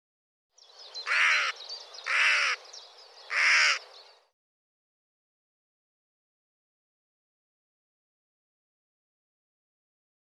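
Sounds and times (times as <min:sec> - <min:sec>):
bird cawing: 0:01.0 - 0:04.0.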